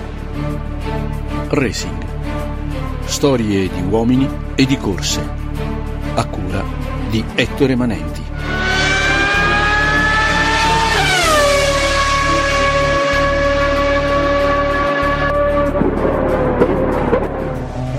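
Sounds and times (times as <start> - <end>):
speech: 0.4 - 2.5, 3.1 - 8.6
Porsche 917 race car engine roaring with a tonal whine: 8.3 - 17.9.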